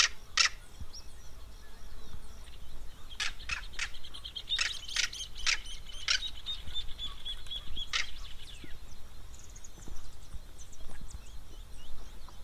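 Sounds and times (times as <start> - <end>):
Southern crested caracara giving rasping notes in the Pantanal: 0.0 - 9.7.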